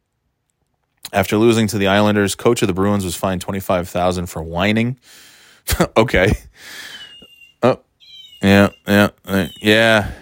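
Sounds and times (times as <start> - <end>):
speech: 1.1 - 6.9, 7.6 - 7.8, 8.4 - 10.2
child's toy cat electronic meows: 8.0 - 8.6.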